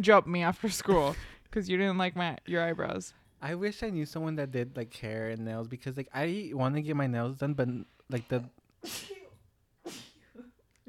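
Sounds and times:
speech: 0.0 - 9.2, 9.8 - 10.1
person sneezing: 8.8 - 10.8.

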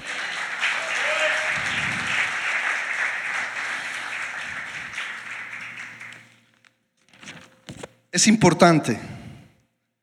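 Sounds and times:
crowd applauding loudly: 0.0 - 6.6
speech: 8.2 - 9.1.

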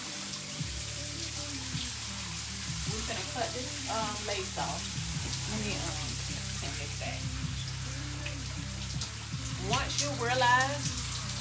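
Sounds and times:
running water: 0.0 - 11.3
speech: 3.6 - 7.5, 9.6 - 11.0.

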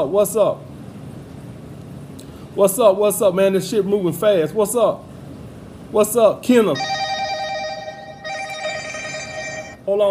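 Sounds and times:
speech: 0.0 - 0.7, 2.6 - 5.1, 5.9 - 7.0, 9.9 - 10.0
phone ringtone ringing: 6.8 - 9.8.

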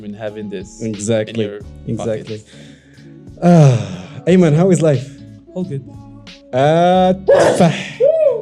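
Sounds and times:
speech: 0.0 - 2.7, 3.4 - 8.0
man sneezing: 7.3 - 8.0.

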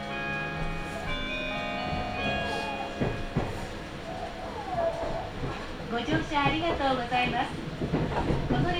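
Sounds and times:
limited express train rumble: 0.1 - 8.7
passenger voices: 5.9 - 7.7, 8.5 - 8.7.

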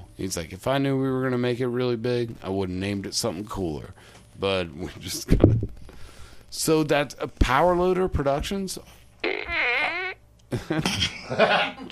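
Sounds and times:
speech: 0.2 - 5.8, 6.5 - 9.6, 10.5 - 11.9
toy fart gun noise: 9.2 - 10.2.

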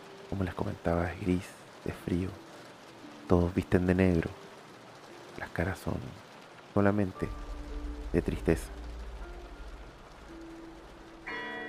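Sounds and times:
heavy rain at a funeral: 0.0 - 11.6
speech: 0.3 - 2.4, 3.3 - 4.4, 5.4 - 6.2, 6.8 - 7.4, 8.1 - 8.8
low steady outdoor rumble: 6.8 - 11.3
church bells ringing at a funeral in heavy rain: 11.2 - 11.6.

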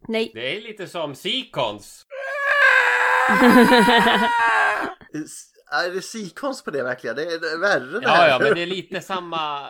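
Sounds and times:
speech: 0.1 - 2.1, 3.3 - 9.6
person imitating a shrill piercing scream: 2.1 - 5.0
laughter: 3.3 - 4.9.

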